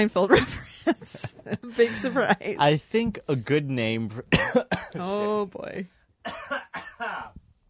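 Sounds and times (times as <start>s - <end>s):
speech: 0.0s - 7.4s
harsh voiced coughing fit: 4.3s - 5.0s, 6.2s - 7.4s.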